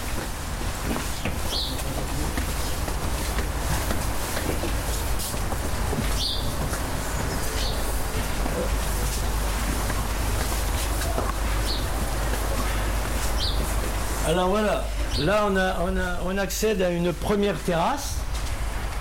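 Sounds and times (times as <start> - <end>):
loud rushing wash: 0.0 - 16.3
high bird chirps by a river: 6.2 - 8.1
speech: 14.4 - 18.2.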